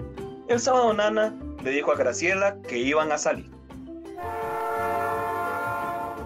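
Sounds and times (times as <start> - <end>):
speech: 0.5 - 3.5
train horn with rumbling undertone on a trip into a city centre: 4.2 - 6.2.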